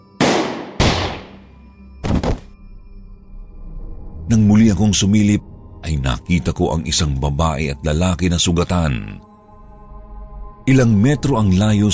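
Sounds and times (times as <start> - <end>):
sharp loud gunshots: 0.2 - 2.5
speech: 4.3 - 9.3, 10.7 - 11.9.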